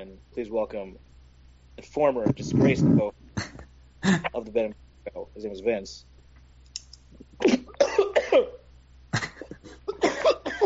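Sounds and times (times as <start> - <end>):
speech: 0.0 - 1.1, 1.8 - 3.2, 4.0 - 6.1, 7.4 - 9.2
cough sound effect played from a soundboard: 7.4 - 8.6, 9.2 - 10.6.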